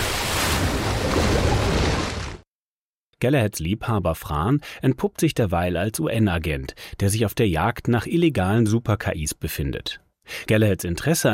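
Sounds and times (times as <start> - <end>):
body plunging into dark water: 0.0 - 2.4
speech: 3.2 - 11.3.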